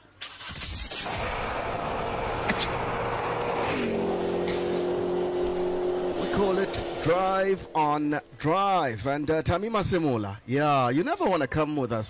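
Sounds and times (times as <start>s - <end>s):
car engine cranking, starting and revving: 0.2s - 8.9s
speech: 6.4s - 12.0s.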